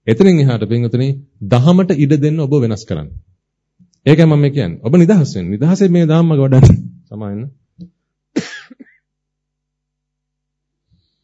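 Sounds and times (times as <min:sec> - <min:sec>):
speech: 0:00.0 - 0:03.3, 0:04.0 - 0:08.5
meditation leader coughing during a guided Buddhist meditation session: 0:08.4 - 0:09.0.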